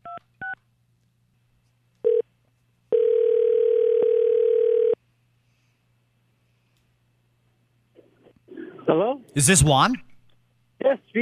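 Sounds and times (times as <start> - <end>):
steady clear phone tone: 2.0 - 2.2, 2.9 - 5.0
speech: 8.9 - 10.1.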